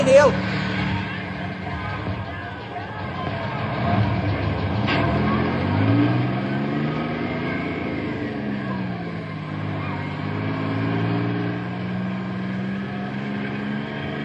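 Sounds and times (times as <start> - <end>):
faint crowd noise: 0.0 - 10.5
bus engine revving and shifting through gears: 0.0 - 14.2
speech: 0.1 - 0.7.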